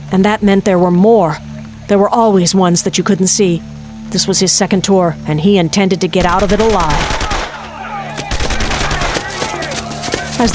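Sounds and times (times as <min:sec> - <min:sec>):
speech: 0:00.1 - 0:07.3, 0:10.4 - 0:10.5
several men firing guns in a jungle war battle: 0:06.2 - 0:09.6.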